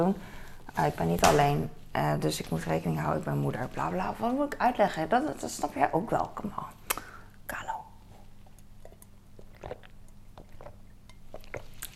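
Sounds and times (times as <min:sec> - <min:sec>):
speech: 0:00.0 - 0:06.8
person slurping sips of coffee: 0:08.4 - 0:11.9
soft lip smacks and swallowing clicks: 0:08.4 - 0:11.9.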